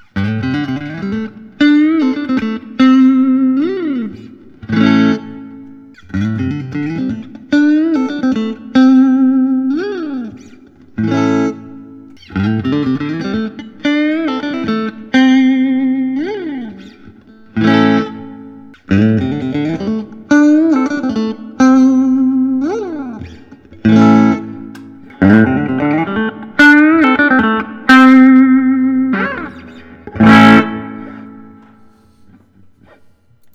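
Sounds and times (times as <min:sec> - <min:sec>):
Fender Custom Shop Showmaster Standard electric guitar: 0:00.0 - 0:33.5.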